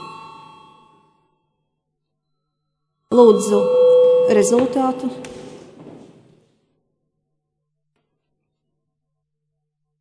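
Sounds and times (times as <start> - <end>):
parliament voting call bell electronic chime: 0.0 - 1.2, 3.1 - 5.2
speech: 3.1 - 5.4.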